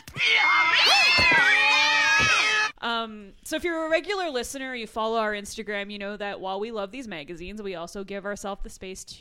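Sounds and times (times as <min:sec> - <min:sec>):
cats yowling and screeching: 0:00.3 - 0:02.7
speech: 0:03.4 - 0:09.1.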